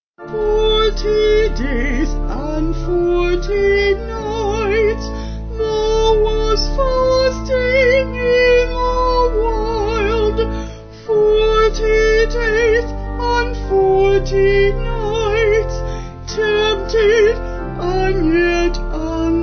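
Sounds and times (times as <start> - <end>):
vocal organ sound: 0.2 - 19.4.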